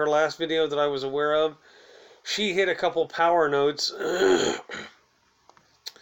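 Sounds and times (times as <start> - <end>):
speech: 0.0 - 4.9
harsh coughs: 4.0 - 5.0.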